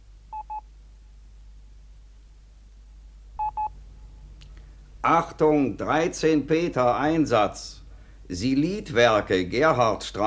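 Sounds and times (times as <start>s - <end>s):
low steady hum: 0.0s - 10.2s
telephone dialing beeps: 3.4s - 3.7s
speech: 5.0s - 10.2s.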